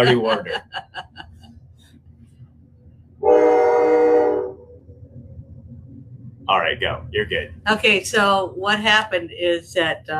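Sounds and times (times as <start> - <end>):
speech: 0.0 - 1.3, 6.5 - 10.1
laughter: 0.0 - 1.5
low rumbling of a passing train: 0.0 - 10.1
loud sustained train horn blaring: 3.2 - 4.8.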